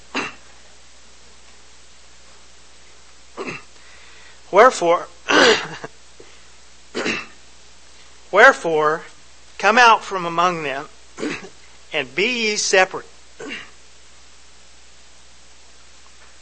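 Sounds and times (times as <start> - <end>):
person clearing throat: 0.1 - 0.5, 3.4 - 3.7, 5.3 - 5.9, 6.9 - 7.4, 11.2 - 11.6, 13.4 - 13.8
speech: 4.5 - 5.9, 8.3 - 13.1.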